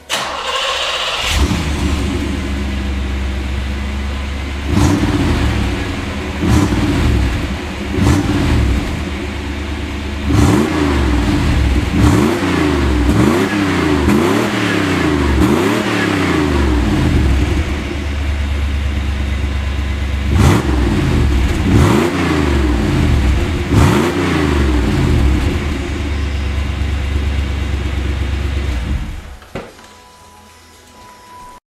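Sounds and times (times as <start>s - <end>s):
exhaust muffler: 0.0s - 29.4s.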